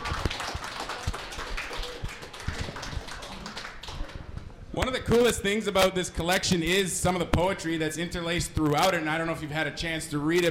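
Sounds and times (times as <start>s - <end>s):
audience applause: 0.0s - 4.2s
speech: 4.8s - 10.4s.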